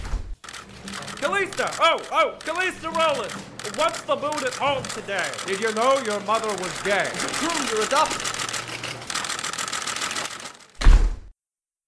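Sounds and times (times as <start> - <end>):
door slamming shut: 0.0 - 0.4, 10.8 - 11.3
movement noise: 0.0 - 9.6
speech: 1.2 - 8.3.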